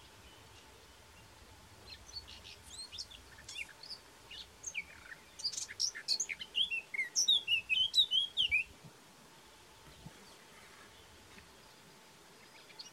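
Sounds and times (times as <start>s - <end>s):
low hiss: 0.0s - 12.9s
Eurasian blackcap Sylvia atricapilla singing: 1.9s - 8.7s.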